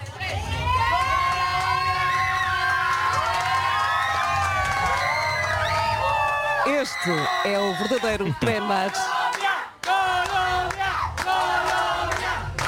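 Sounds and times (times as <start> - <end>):
group of people shouting and cheering together: 0.0 - 12.6
rising whoops: 0.6 - 7.8
speech: 6.8 - 9.2.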